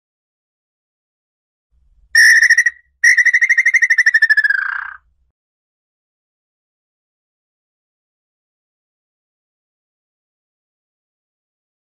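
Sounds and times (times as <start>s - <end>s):
Tataupa Tinamou song of pulsed whistles: 2.2s - 5.0s.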